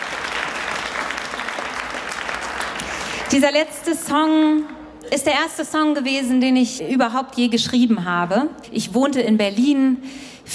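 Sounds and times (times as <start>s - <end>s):
audience applause at a concert for the keyboard player: 0.0s - 3.3s
speech: 3.3s - 10.5s.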